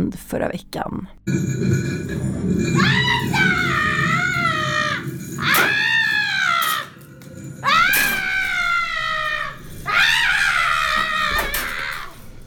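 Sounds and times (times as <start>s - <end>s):
speech: 0.1s - 3.8s
high-pitched screams on a horror walk on a ship at an amusement park in Stockholm: 2.7s - 7.0s, 7.6s - 12.4s.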